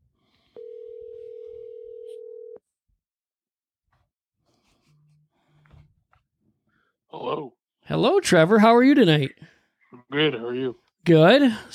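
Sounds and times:
electronic phone ringing tone: 0:00.6 - 0:02.6
speech: 0:07.3 - 0:09.5, 0:10.1 - 0:11.7.

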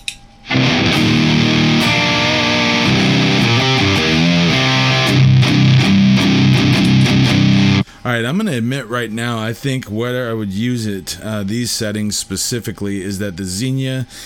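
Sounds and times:
electric guitar through three stacked effects pedals playing distorted chords: 0:00.5 - 0:07.8
speech: 0:08.1 - 0:14.2.

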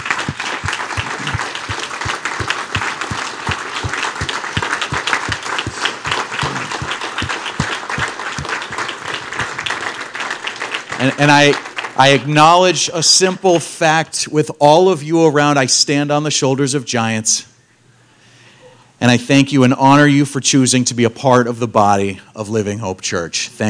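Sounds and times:
regular low thumping beat: 0:00.0 - 0:09.7
large audience applauding: 0:00.0 - 0:12.3
speech: 0:11.0 - 0:17.5, 0:19.0 - 0:23.6.

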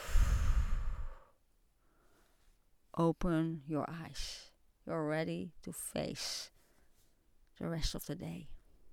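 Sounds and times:
deep breath exhaled during a guided breathing exercise: 0:00.0 - 0:02.2
speech: 0:03.0 - 0:06.6, 0:07.6 - 0:08.6.

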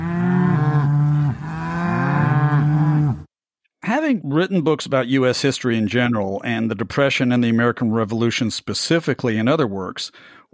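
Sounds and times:
cattle mooing in a stampede: 0:00.0 - 0:03.3
speech: 0:04.1 - 0:10.5.

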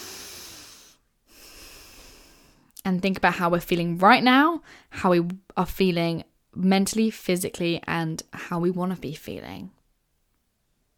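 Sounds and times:
deep breath during a calming exercise: 0:00.0 - 0:02.8, 0:04.6 - 0:04.9
speech: 0:02.9 - 0:09.8.

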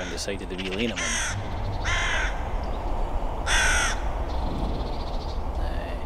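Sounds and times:
carrion crow cawing outdoors in dispute with a magpie: 0:00.0 - 0:02.8, 0:03.4 - 0:04.3
speech: 0:00.2 - 0:01.5
steady low rumble: 0:00.2 - 0:06.0.

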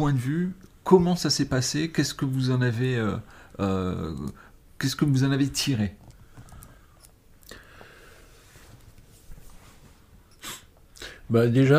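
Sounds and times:
speech: 0:00.0 - 0:06.0, 0:11.3 - 0:11.7
person sneezing: 0:10.4 - 0:10.7.

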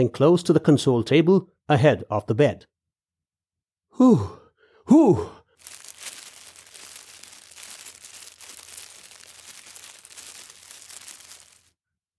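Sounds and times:
speech: 0:00.0 - 0:02.7, 0:04.0 - 0:05.4
rustling and crinkling: 0:05.6 - 0:11.7.

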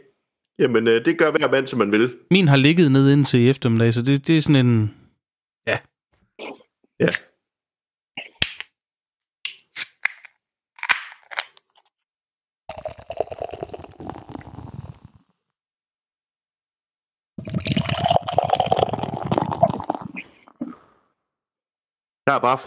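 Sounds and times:
speech: 0:00.6 - 0:05.0, 0:05.6 - 0:07.3, 0:22.3 - 0:22.6
beer can opened with metallic clicks and a hiss: 0:08.4 - 0:08.7, 0:09.5 - 0:11.6
beer poured into a glass: 0:12.7 - 0:14.8, 0:17.4 - 0:20.2.

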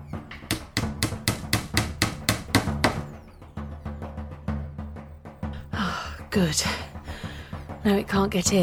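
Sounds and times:
hammer driving a nail to fix a charm in place: 0:00.3 - 0:03.1
speech: 0:06.3 - 0:06.9, 0:07.8 - 0:08.6.

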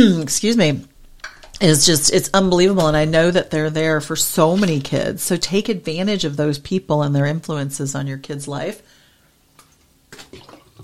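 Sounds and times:
speech: 0:00.0 - 0:00.9, 0:01.6 - 0:08.9
person drinking a glass of water: 0:09.6 - 0:10.8.

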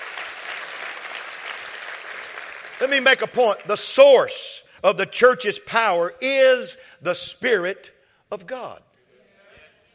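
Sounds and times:
church congregation clapping hands: 0:00.0 - 0:04.5
speech: 0:02.8 - 0:08.9.

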